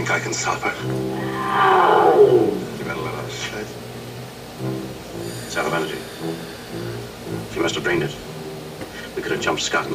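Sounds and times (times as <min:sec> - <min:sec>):
speech: 0:00.1 - 0:03.9, 0:04.6 - 0:08.3, 0:09.2 - 0:09.9
saber-toothed tiger roar: 0:01.1 - 0:03.3.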